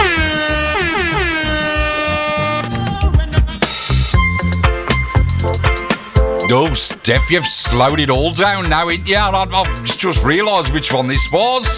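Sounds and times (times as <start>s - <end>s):
air horn blasts: 0.0s - 2.8s
reggae music track with punchy beats: 0.0s - 11.7s
speech: 6.5s - 11.7s.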